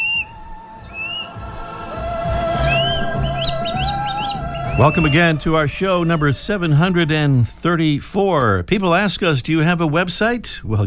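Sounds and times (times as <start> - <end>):
swallow-tailed kite short chirping whistles: 0.0 - 5.3
swallow-tailed kite whistled calls: 0.0 - 7.3
speech: 4.8 - 10.8.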